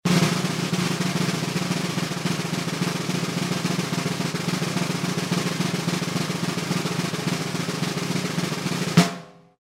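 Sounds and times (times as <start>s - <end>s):
drum: 0.0s - 9.5s.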